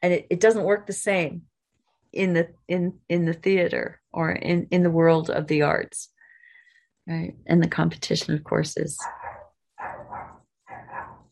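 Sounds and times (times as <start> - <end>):
speech: 0.0 - 1.5, 2.1 - 6.1, 7.1 - 10.0
dog barking: 9.0 - 11.3.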